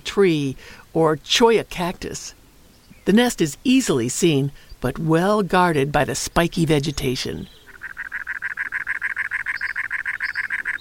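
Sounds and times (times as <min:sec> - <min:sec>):
speech: 0:00.2 - 0:02.4, 0:03.1 - 0:07.6
cactus wren harsh chattering call: 0:02.8 - 0:10.7.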